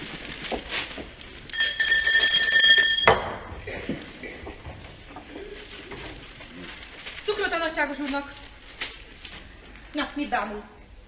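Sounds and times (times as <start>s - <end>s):
small hand bell rung by a woman to summon the maid: 1.5s - 3.5s
speech: 8.0s - 8.4s, 10.1s - 10.8s.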